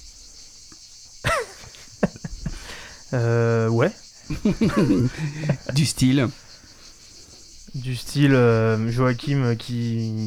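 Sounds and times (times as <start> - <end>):
cicadas buzzing: 0.0 - 10.2
laughter: 1.2 - 6.4
speech: 3.1 - 6.4, 7.7 - 10.2.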